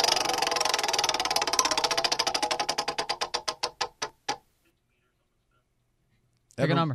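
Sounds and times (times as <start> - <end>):
prize wheel spinning and ticking: 0.0 - 4.4.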